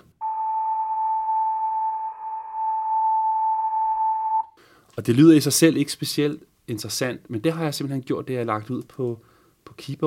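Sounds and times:
flute-like tone from blowing into a tube: 0.2 - 4.6
speech: 5.0 - 10.0.

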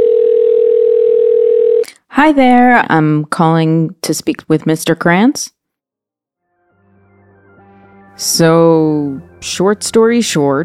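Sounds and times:
telephone dial tone of an outgoing call: 0.0 - 1.9
speech: 2.2 - 5.6, 8.2 - 10.6.

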